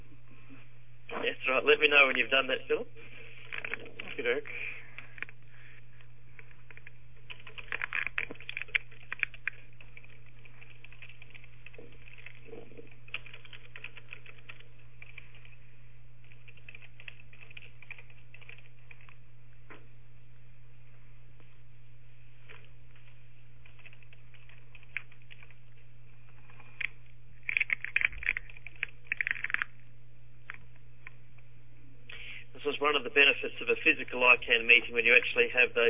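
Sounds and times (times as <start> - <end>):
steady low electrical hum: 0.0 - 35.8
speech: 1.5 - 3.2, 4.2 - 4.8, 32.8 - 35.8
computer keyboard typing: 6.4 - 15.6, 16.2 - 19.2, 22.6 - 25.6, 26.4 - 29.8.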